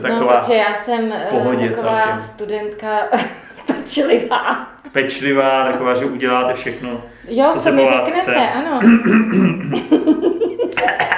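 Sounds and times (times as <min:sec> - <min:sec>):
speech: 0:00.0 - 0:10.4
laughter: 0:03.2 - 0:07.1, 0:08.7 - 0:11.1
person in a coughing fit: 0:08.8 - 0:09.8, 0:10.8 - 0:11.1.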